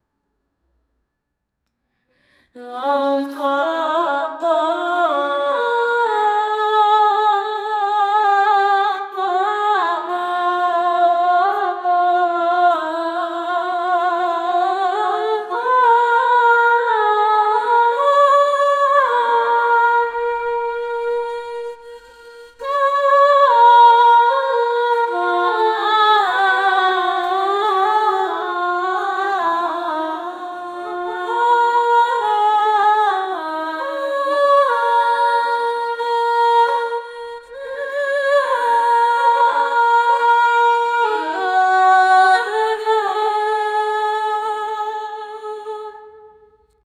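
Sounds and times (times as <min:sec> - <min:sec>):
female singer-songwriter singing with acoustic accompaniment: 0:02.4 - 0:46.6.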